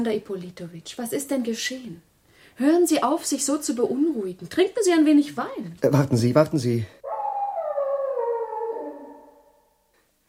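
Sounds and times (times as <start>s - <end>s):
speech: 0.0s - 7.0s
dog howling: 7.0s - 9.6s.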